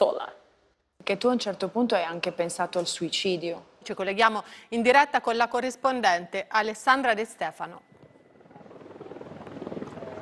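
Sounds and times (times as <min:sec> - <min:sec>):
speech: 0:01.1 - 0:07.9
drone flying overhead buzzing: 0:07.8 - 0:10.1.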